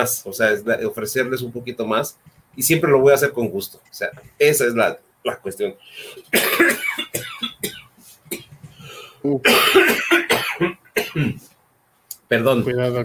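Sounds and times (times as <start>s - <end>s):
speech: 0.0s - 8.4s, 9.2s - 11.5s, 12.3s - 13.0s
person coughing: 6.3s - 8.6s, 9.4s - 11.4s.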